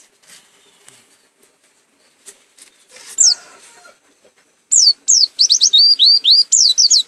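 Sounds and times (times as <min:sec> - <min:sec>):
white-eye singing: 0:04.7 - 0:07.0.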